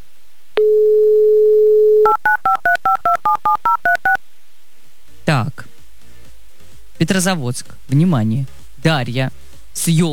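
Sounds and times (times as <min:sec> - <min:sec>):
touch-tone dialing beeps: 0:00.6 - 0:04.2
speech: 0:07.0 - 0:10.1.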